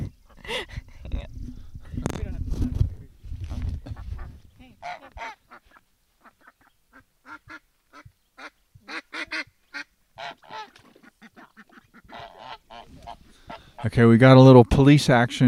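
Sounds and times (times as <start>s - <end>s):
noisy scuffle of fowl: 3.5s - 14.0s
ducks quacking: 3.8s - 14.0s
goose honking while being chased by ducks: 4.2s - 14.0s
speech: 13.9s - 15.4s.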